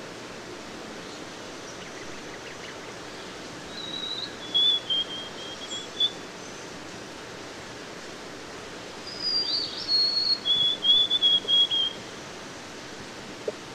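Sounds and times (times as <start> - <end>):
white-throated sparrow whistled song: 3.7 - 6.6, 9.0 - 12.0.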